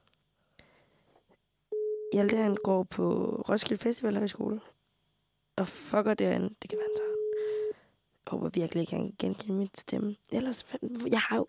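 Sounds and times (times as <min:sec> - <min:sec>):
phone ringing tone as a call is placed: 0:01.7 - 0:02.7, 0:06.7 - 0:07.8
speech: 0:02.1 - 0:04.8, 0:05.6 - 0:07.1, 0:08.3 - 0:11.4.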